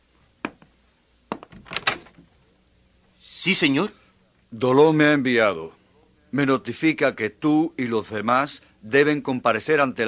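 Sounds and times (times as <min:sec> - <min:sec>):
door latch click: 0:01.4 - 0:02.2
speech: 0:03.4 - 0:10.0.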